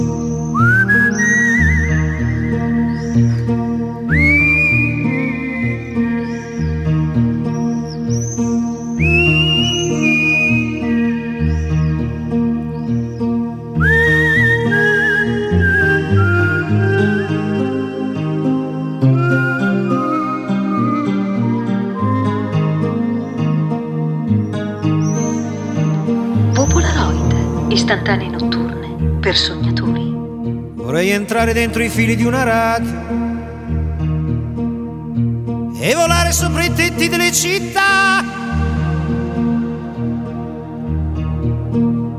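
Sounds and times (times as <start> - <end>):
full instrumental backing music: 0.0 - 42.1
person whistling a bright melody with sliding notes: 0.4 - 2.7, 4.1 - 6.8, 8.9 - 11.6, 13.8 - 17.6, 19.0 - 22.9
speech: 31.3 - 33.1, 35.8 - 38.3.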